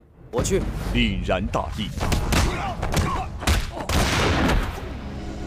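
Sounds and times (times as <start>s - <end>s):
speech: 0.3s - 3.3s
gunshots: 2.0s - 4.9s.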